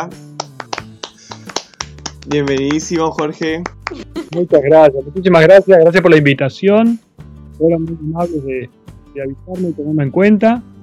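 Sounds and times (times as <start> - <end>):
speech: 0.0 - 0.3, 2.2 - 7.0, 7.6 - 10.7
small group clapping to welcome a guest: 0.0 - 4.5.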